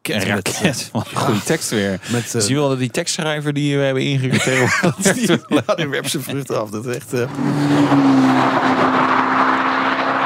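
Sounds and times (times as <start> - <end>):
speech: 0.1 - 9.2
laughter: 0.3 - 2.5, 4.1 - 7.3
GTC4 Lusso T car with 610 hp turbocharged V8 engine droning: 5.9 - 10.2.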